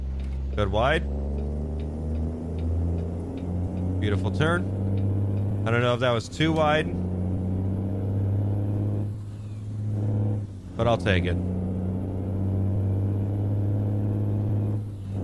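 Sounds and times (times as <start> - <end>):
heavy truck engine accelerating in a driving video game: 0.0 - 15.2
speech: 0.6 - 1.2, 4.0 - 4.8, 5.6 - 7.0, 10.8 - 11.5.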